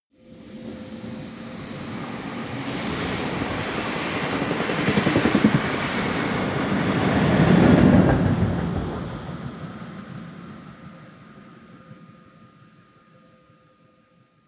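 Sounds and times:
passenger train rattling by: 0.2s - 11.2s.

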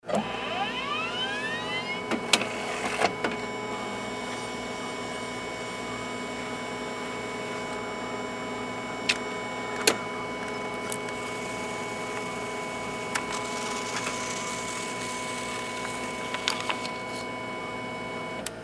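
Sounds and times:
printer printing cycle: 0.0s - 18.5s.

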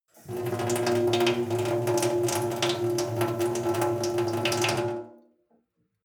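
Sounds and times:
sink water flowing: 0.1s - 5.1s.

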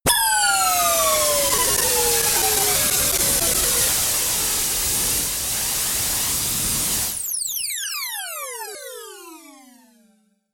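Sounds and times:
falling jet noise sweep: 0.1s - 7.4s.

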